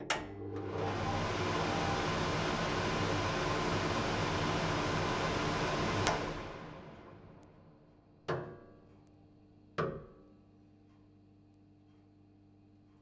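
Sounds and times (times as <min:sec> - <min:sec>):
kitchen extractor fan running: 0:00.0 - 0:08.7.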